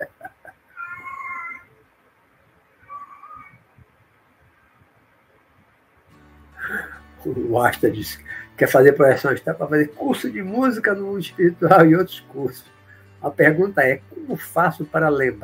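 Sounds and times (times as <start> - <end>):
laughter: 0.0 - 0.7
cat meowing for food: 0.7 - 1.8, 2.8 - 3.7
speech: 7.2 - 15.4.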